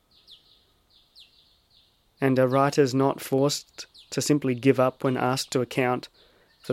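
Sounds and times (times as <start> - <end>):
background hiss: 0.0 - 6.7
bright high-pitched whistling bird calls with descending chirp: 0.0 - 6.7
speech: 2.2 - 6.7.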